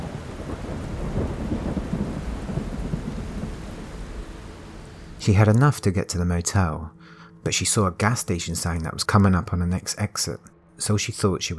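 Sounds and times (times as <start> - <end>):
heavy rain pouring down: 0.0 - 5.4
speech: 5.2 - 11.5.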